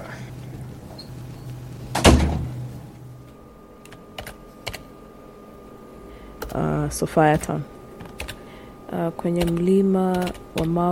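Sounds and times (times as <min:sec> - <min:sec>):
solid door thud with a short rattle: 0:01.9 - 0:02.6
speech: 0:06.5 - 0:07.7, 0:09.1 - 0:10.8.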